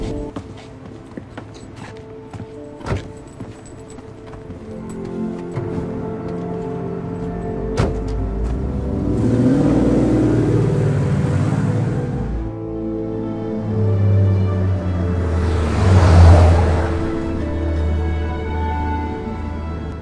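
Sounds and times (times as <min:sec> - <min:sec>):
car engine pulling away: 0:05.6 - 0:20.0
scattered knocks and a sharp thud: 0:07.8 - 0:08.2.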